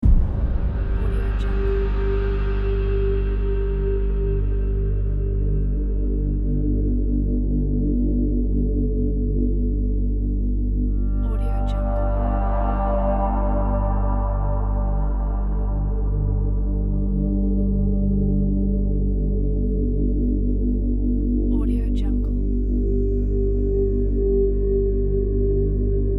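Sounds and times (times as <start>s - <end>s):
dark ambient drone: 0.0s - 26.1s.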